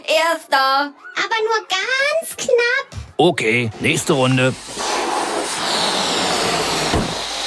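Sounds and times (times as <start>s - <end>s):
speech: 0.2s - 4.8s
air rushing out of a blown-up balloon released in a balloon race: 3.7s - 7.4s
short thump: 6.9s - 7.2s.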